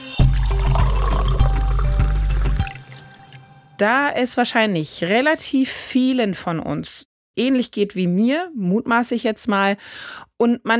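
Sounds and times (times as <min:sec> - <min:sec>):
coffee pouring into a cup: 0:00.2 - 0:03.5
speech: 0:03.8 - 0:10.7.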